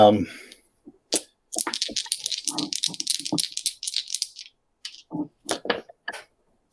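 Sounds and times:
six-sided die rolled for a tabletop game: 1.1 - 6.0.

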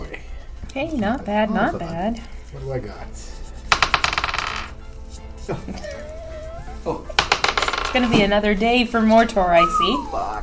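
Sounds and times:
speech: 0.7 - 3.4, 6.8 - 7.1, 7.9 - 10.4
dice clattering on a hard tabletop: 3.7 - 4.8, 7.2 - 8.3.

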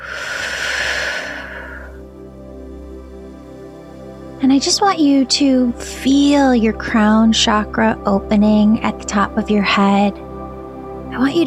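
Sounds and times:
slow deep breath in and out: 0.0 - 2.1
speech: 4.4 - 10.2, 11.2 - 11.4.

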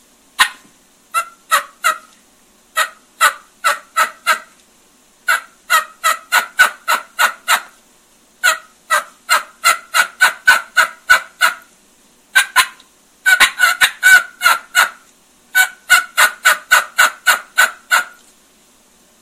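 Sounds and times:
turkey hen yelps imitated on a diaphragm mouth call: 0.4 - 2.2, 2.8 - 4.5, 5.3 - 7.8, 8.4 - 11.7, 12.3 - 18.2.

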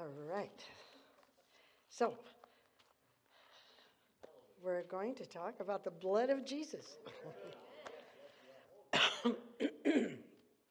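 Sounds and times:
speech: 0.1 - 0.9, 1.9 - 2.4, 4.6 - 7.6, 9.2 - 10.2
harsh raspy coughs: 8.9 - 10.3.

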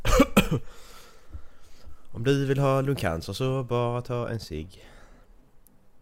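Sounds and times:
harsh phlegmy coughs from coughing up phlegm: 0.0 - 0.8
speech: 2.2 - 4.9.

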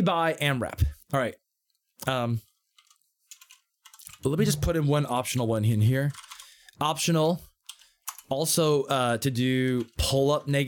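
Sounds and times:
speech: 0.0 - 1.4, 2.0 - 2.5, 4.2 - 7.5, 8.3 - 10.6
computer keyboard typing: 2.8 - 4.6, 6.0 - 6.5, 7.7 - 8.3
brief voiced sound from a person: 4.2 - 5.2.

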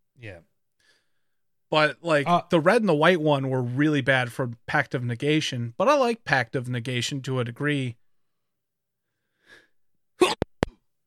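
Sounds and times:
speech: 0.2 - 0.9, 1.7 - 8.0
person sneezing a big sneeze: 10.2 - 10.8.

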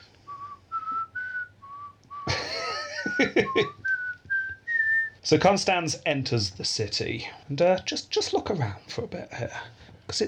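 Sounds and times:
penny whistle playing a simple tune: 0.3 - 2.4, 3.0 - 5.2
laughter: 2.3 - 3.8
speech: 3.2 - 3.8, 5.3 - 10.2.

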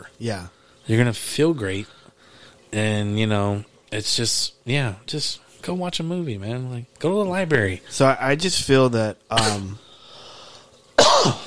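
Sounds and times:
speech: 0.2 - 2.0, 2.7 - 9.9, 11.2 - 11.4
person coughing: 9.3 - 9.8, 11.0 - 11.4.

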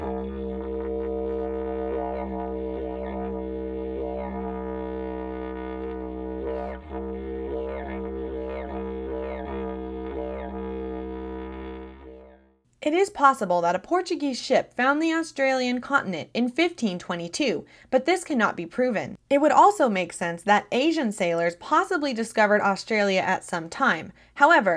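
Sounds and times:
didgeridoo playing a deep buzzing drone: 0.0 - 12.6
speech: 12.8 - 24.7.

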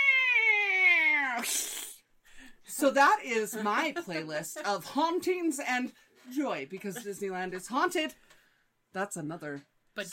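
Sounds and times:
person imitating a cat meowing: 0.0 - 2.0
speech: 1.4 - 1.7, 2.8 - 8.3, 8.9 - 10.1.

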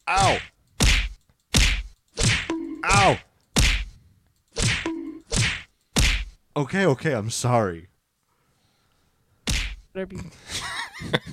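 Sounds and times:
speech: 0.1 - 0.5, 3.0 - 3.3, 6.6 - 7.9, 10.0 - 11.3
punches landing on a body: 0.8 - 2.5, 3.6 - 3.9, 4.6 - 6.4, 9.5 - 9.8.

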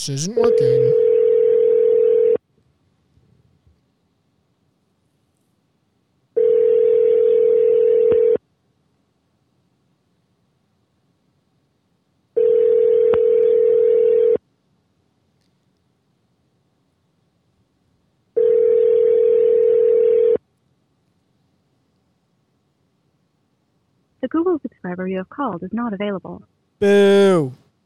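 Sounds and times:
speech: 0.0 - 1.1, 25.0 - 27.6
phone line ringback tone on a Google Voice call: 0.4 - 2.4, 6.4 - 8.4, 12.4 - 14.4, 18.4 - 20.4.

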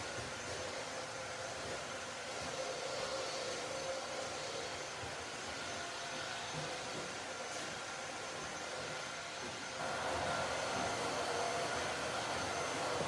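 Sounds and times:
vacuum cleaner droning: 0.0 - 13.0.

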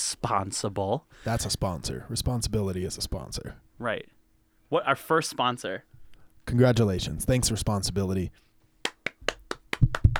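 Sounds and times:
speech: 0.2 - 8.4
hand clapping: 8.8 - 10.1.

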